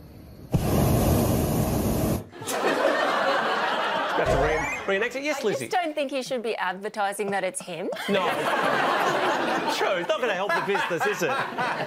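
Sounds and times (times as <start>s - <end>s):
hot air balloon burner roaring hiss: 0.5s - 2.3s
laughter: 2.3s - 5.7s, 7.7s - 11.8s
speech: 4.2s - 11.8s.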